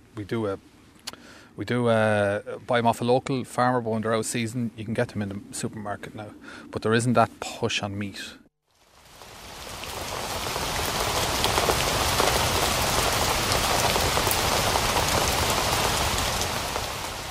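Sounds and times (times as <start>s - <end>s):
speech: 0.2s - 8.4s
rain pattering on a surface: 8.7s - 17.3s.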